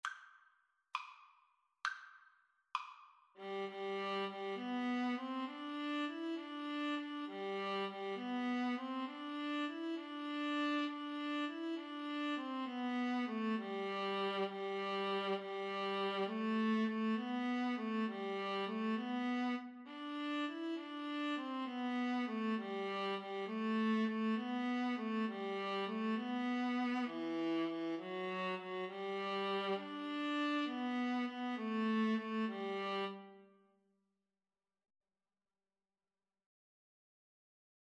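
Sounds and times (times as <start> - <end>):
viola and cello duet: 3.4 - 33.4.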